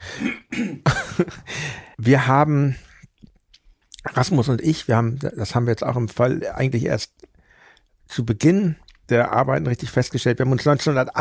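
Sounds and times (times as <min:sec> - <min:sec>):
person clearing throat: 0:00.1 - 0:01.4
speech: 0:00.2 - 0:00.4, 0:01.2 - 0:02.8, 0:04.2 - 0:07.3, 0:08.1 - 0:11.2.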